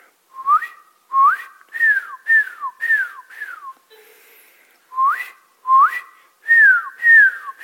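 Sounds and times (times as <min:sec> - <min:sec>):
person whistling in imitation of birds: 0:00.4 - 0:03.8, 0:05.0 - 0:07.6.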